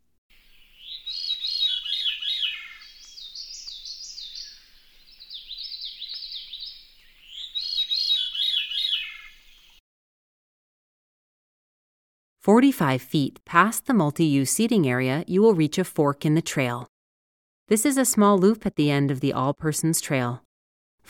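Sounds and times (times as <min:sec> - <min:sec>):
veery song along a trail in the Berkshires: 0:00.3 - 0:09.8
speech: 0:12.4 - 0:16.9, 0:17.7 - 0:21.0.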